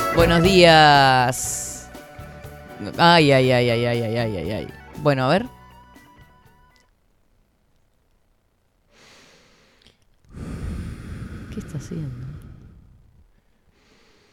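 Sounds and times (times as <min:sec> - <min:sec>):
speech: 0:00.2 - 0:01.5, 0:02.8 - 0:05.6, 0:11.7 - 0:12.2
person taking deep exaggerated breaths and sighing: 0:08.9 - 0:14.3.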